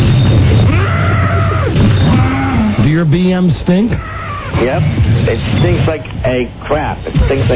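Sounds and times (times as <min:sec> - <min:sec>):
rough noisy background: 0:00.0 - 0:07.5
40-year-old man roaring imitating a monster: 0:00.7 - 0:02.9
speech: 0:03.0 - 0:07.5.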